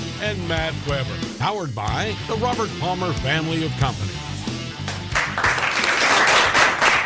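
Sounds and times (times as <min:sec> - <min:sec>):
speech: 0:00.2 - 0:04.2
crowd applauding: 0:04.8 - 0:07.0.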